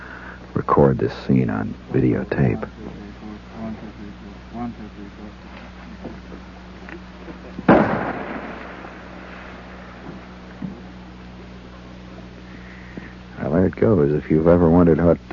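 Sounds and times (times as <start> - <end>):
faint activity: 0.0 - 15.3
steady low hum: 0.0 - 15.3
speech: 0.7 - 3.1, 13.8 - 15.3
big game rifle shot fired at targets in Alaska: 7.7 - 10.0.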